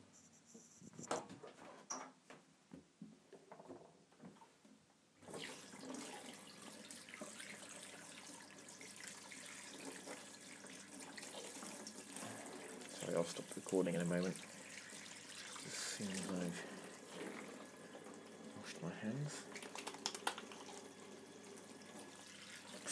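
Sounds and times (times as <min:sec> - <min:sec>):
tap water running into a bathroom sink while washing dough off hands: 0:05.2 - 0:22.8
speech: 0:13.2 - 0:14.5, 0:16.0 - 0:16.7, 0:19.0 - 0:19.6.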